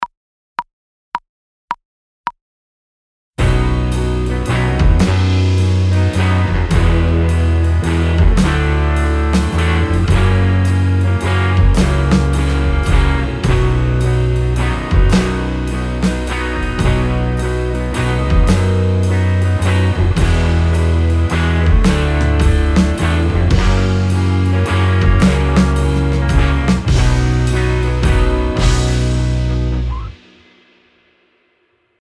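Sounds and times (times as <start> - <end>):
backing track: 3.4 - 30.4.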